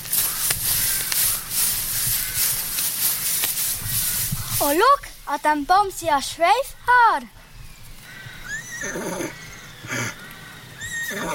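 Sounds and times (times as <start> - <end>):
speech: 4.6 - 7.4, 8.8 - 9.1
horse neighing: 8.1 - 11.3.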